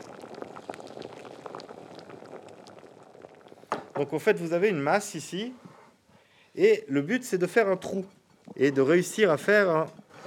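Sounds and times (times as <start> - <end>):
water boiling in a saucepan: 0.0 - 5.3
speech: 4.0 - 5.6, 6.6 - 10.0.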